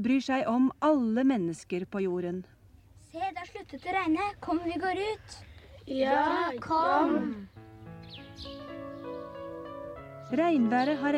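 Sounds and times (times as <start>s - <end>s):
speech: 0.0s - 7.5s, 8.4s - 8.8s, 10.3s - 11.1s
birds chirping after the rain: 3.2s - 11.1s
sustained musical tones: 6.8s - 11.1s.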